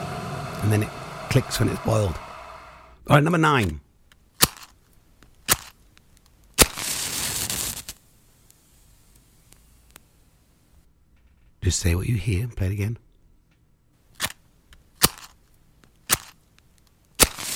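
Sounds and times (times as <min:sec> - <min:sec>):
speech: 0:00.6 - 0:02.2, 0:03.1 - 0:03.8, 0:11.6 - 0:13.1
match striking: 0:05.4 - 0:10.1, 0:17.2 - 0:17.5.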